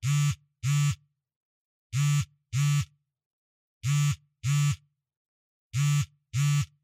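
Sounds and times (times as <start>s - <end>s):
cell phone vibrating on a cushion: 0.0s - 1.1s, 1.9s - 3.0s, 3.8s - 4.9s, 5.7s - 6.8s.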